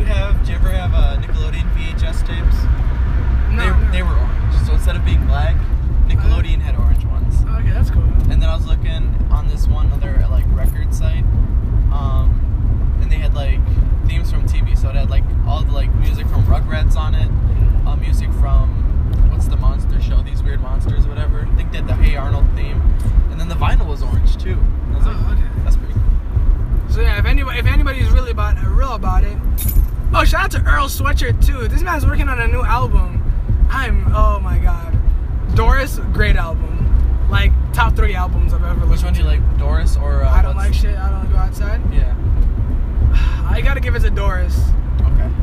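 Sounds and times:
road rumble inside a moving car: 0:00.0 - 0:45.4
light jingling rattles: 0:10.2 - 0:11.0, 0:29.4 - 0:30.1
speech: 0:31.2 - 0:33.1, 0:37.3 - 0:42.5, 0:43.2 - 0:45.4.

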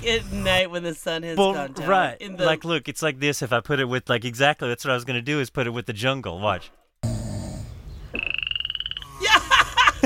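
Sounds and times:
speech: 0:00.0 - 0:07.2
frogs croaking in a rapid buzzing pulsed trill: 0:08.1 - 0:09.2
laughter: 0:09.2 - 0:10.0.

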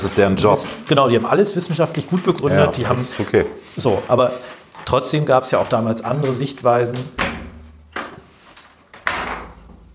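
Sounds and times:
speech: 0:00.0 - 0:07.3
door opening clunks and rattles: 0:07.2 - 0:08.2.

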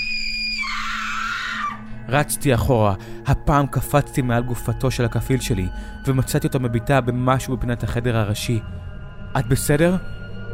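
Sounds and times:
woman screaming: 0:00.0 - 0:01.9
speech: 0:02.1 - 0:10.2.

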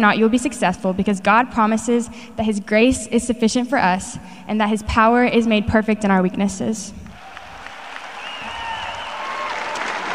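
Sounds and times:
speech: 0:00.0 - 0:07.0
large audience applause: 0:07.2 - 0:10.1
faint whistles from the crowd: 0:08.2 - 0:09.4.

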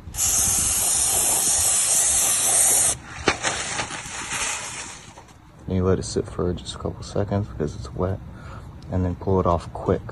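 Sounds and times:
spray paint hissing from an aerosol can: 0:00.0 - 0:05.4
speech: 0:05.7 - 0:08.3, 0:08.9 - 0:10.0.

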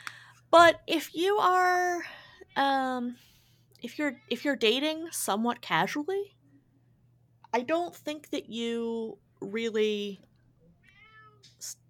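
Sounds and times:
low hum: 0:00.0 - 0:11.8
speech: 0:00.5 - 0:06.4, 0:07.5 - 0:10.3, 0:11.5 - 0:11.8
pet cat meowing: 0:10.8 - 0:11.5.

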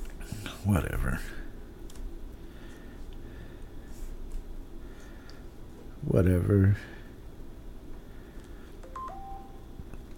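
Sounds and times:
steady low hum: 0:00.0 - 0:10.1
speech: 0:00.6 - 0:01.4, 0:06.0 - 0:07.0
electronic email notification alert beeping tones: 0:08.8 - 0:09.6.

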